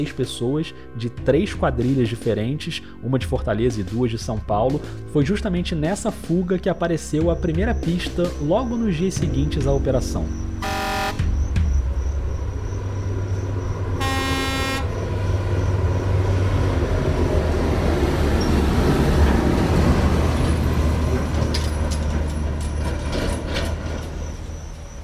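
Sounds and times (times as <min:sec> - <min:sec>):
speech: 0:00.0 - 0:10.6
car-carrier truck engine rumbling on a highway: 0:00.0 - 0:25.0
truck road noise on a highway: 0:00.0 - 0:25.0
car-carrier truck air-horn blasts: 0:10.6 - 0:11.4, 0:14.0 - 0:15.0.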